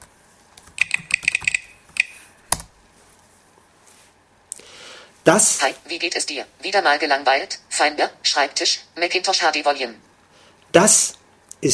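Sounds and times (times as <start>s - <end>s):
computer keyboard key clicks from typing a password: 0.6s - 2.7s
speech: 5.3s - 10.1s, 10.7s - 11.7s.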